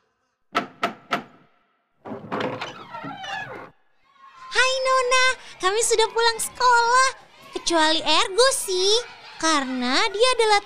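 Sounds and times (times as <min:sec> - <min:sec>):
sharp knocks on a wooden door: 0:00.5 - 0:01.4
speech: 0:05.0 - 0:10.6.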